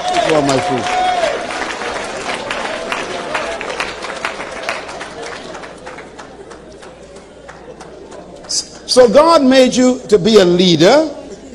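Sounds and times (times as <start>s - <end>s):
large crowd clapping along: 0.0s - 9.1s
murmur of voices: 0.0s - 11.5s
speech: 0.2s - 1.0s, 9.0s - 11.2s.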